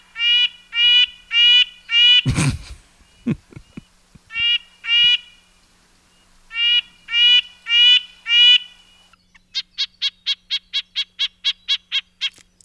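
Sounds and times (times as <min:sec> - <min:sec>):
red-breasted nuthatch calls: 0:00.0 - 0:12.6
laughter: 0:02.3 - 0:04.4.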